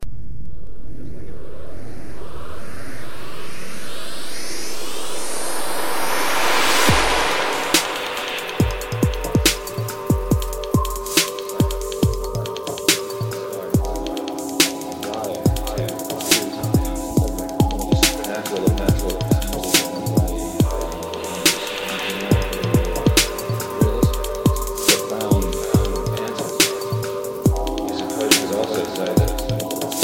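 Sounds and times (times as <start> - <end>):
MIDI music: 6.6 - 30.0.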